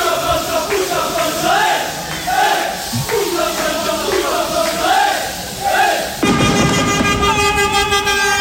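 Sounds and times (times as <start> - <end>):
jubilant crowd chanting and cheering outdoors at night: 0.0 - 6.3
car horns honking: 6.2 - 8.4.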